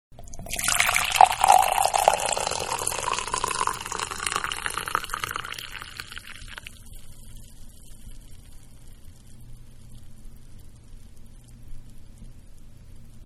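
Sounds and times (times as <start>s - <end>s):
coffee pouring into a mug in a kitchen: 0.2s - 7.9s.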